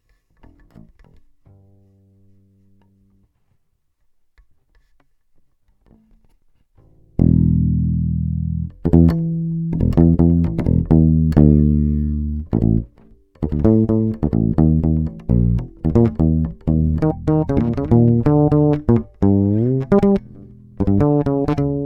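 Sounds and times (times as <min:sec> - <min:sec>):
normal bass USB: 0:07.2 - 0:21.8.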